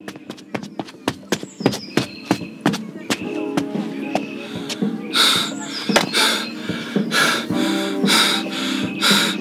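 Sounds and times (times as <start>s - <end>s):
running footsteps: 0.0s - 9.3s
heavy rhythmic panting breaths: 4.4s - 9.3s.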